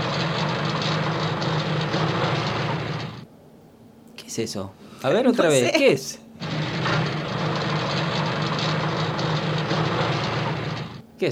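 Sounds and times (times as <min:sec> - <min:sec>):
tractor engine running in the countryside: 0:00.0 - 0:03.2, 0:06.4 - 0:11.0
speech: 0:04.4 - 0:06.2.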